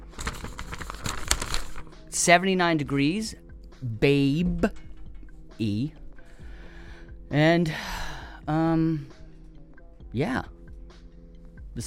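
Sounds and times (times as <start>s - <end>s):
paper being handled crinkling and rustling: 0.0s - 1.9s
speech: 2.2s - 4.8s, 5.6s - 6.0s, 7.3s - 7.9s, 8.5s - 9.2s, 10.1s - 10.6s.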